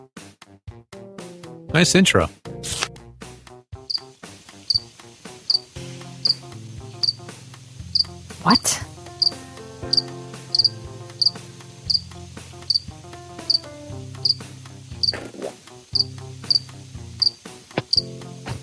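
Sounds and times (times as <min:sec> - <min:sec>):
music with sustained tones and percussive hits: 0:00.0 - 0:18.6
speech: 0:01.8 - 0:02.8, 0:08.5 - 0:08.8
cricket chirping: 0:04.7 - 0:04.9, 0:05.5 - 0:06.4, 0:07.0 - 0:07.2, 0:07.9 - 0:08.1, 0:09.2 - 0:12.1, 0:12.7 - 0:12.9, 0:13.5 - 0:14.4, 0:16.0 - 0:18.0.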